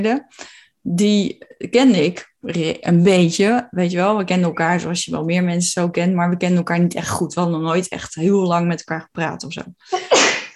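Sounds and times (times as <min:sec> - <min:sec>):
speech: 0:00.0 - 0:10.5
sneeze: 0:10.0 - 0:10.5.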